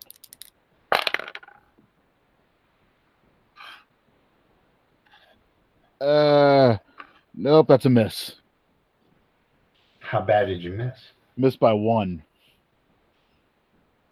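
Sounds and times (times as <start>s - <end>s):
dice clattering in a quick rattling burst: 0.0s - 1.6s
short voiced exclamation: 6.0s - 6.8s
speech: 7.4s - 8.4s, 10.1s - 12.3s.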